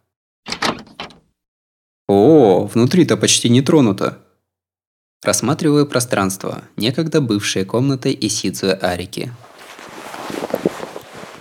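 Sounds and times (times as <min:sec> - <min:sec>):
room door latch clunk: 0:00.5 - 0:01.2
speech: 0:02.1 - 0:04.2, 0:05.2 - 0:09.5.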